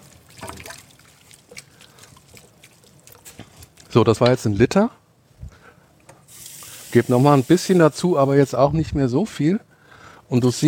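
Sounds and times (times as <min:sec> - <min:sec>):
tomato broth trickling and dripping: 0:00.0 - 0:03.9, 0:06.3 - 0:07.2
speech: 0:03.9 - 0:05.0, 0:06.9 - 0:09.7, 0:10.3 - 0:10.6.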